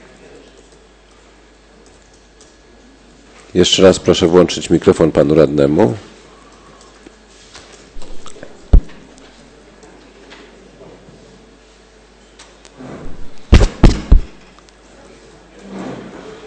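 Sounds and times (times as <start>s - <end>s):
speech: 3.5s - 6.1s
hollow knocks: 8.0s - 9.0s, 13.1s - 14.4s.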